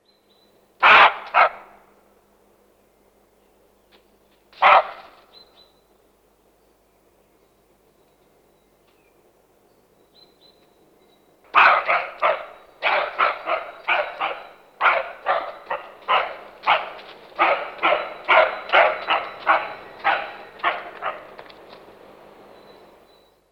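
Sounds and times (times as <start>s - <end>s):
roe deer alarm call: 0.8s - 1.8s, 4.6s - 5.5s, 11.5s - 21.5s.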